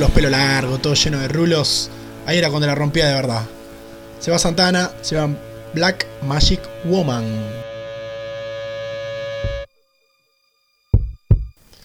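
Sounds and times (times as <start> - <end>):
speech: 0.0 - 3.6, 4.2 - 7.7
sustained humming musical chord: 0.0 - 9.7
deep heartbeat: 11.0 - 11.6.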